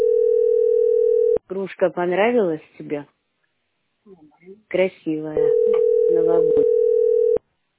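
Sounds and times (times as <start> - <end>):
telephone ringing tone on an unanswered call: 0.0 - 1.4, 5.4 - 7.4
speech: 1.5 - 3.2, 4.0 - 6.9.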